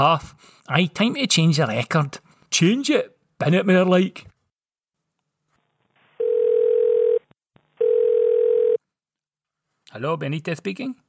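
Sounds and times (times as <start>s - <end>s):
speech: 0.0s - 4.3s, 9.9s - 11.0s
telephone line tone after a call drops: 6.2s - 8.8s.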